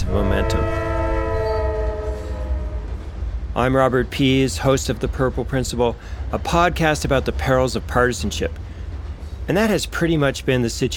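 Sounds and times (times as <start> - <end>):
train horn blaring in sustained harmonic tones: 0.0 - 3.1
heavy low rumble of passing train: 0.0 - 10.9
speech: 3.6 - 8.7, 9.5 - 10.9.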